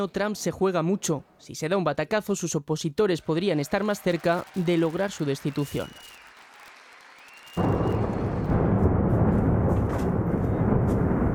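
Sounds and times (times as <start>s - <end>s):
speech: 0.0s - 6.2s
explosion from a missile strike: 7.6s - 11.3s.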